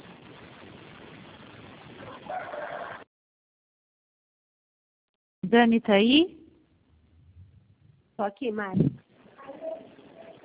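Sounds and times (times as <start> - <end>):
neighbour's rooster crowing: 2.1 - 3.1
speech: 5.5 - 6.4, 8.2 - 9.0.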